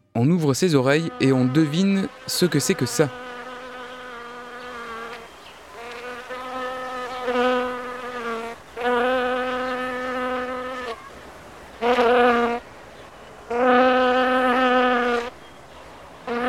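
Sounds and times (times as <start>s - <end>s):
speech: 0.2s - 3.5s
bee buzzing: 0.4s - 11.1s, 11.7s - 12.6s, 13.5s - 15.4s, 16.2s - 16.4s.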